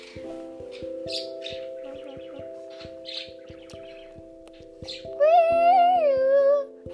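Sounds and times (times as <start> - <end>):
bird squawking with a harmonic squawk: 0.0 - 5.2
bird chirping: 0.0 - 6.0.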